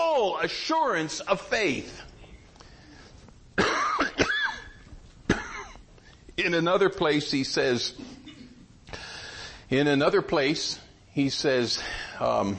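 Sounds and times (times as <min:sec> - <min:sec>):
speech: 0:00.2 - 0:02.1, 0:06.4 - 0:08.2, 0:09.7 - 0:12.5
sharp coughs: 0:03.6 - 0:05.9, 0:08.0 - 0:08.7.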